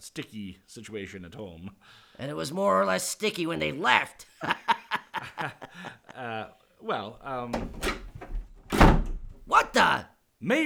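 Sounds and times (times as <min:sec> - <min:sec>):
speech: 0:00.0 - 0:08.0, 0:09.5 - 0:10.6
laughter: 0:04.4 - 0:06.2
studio door creaking open: 0:07.2 - 0:09.8.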